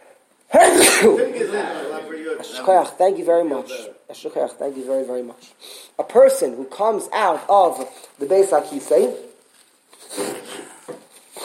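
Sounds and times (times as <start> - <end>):
person sneezing: 0.5 - 1.3, 10.1 - 11.4
speech: 1.0 - 9.3.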